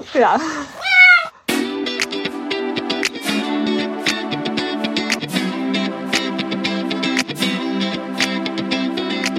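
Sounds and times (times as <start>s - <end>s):
speech: 0.1s - 0.8s
loud cat meow: 0.8s - 1.4s
bright busy music with a steady driving beat: 1.5s - 9.3s.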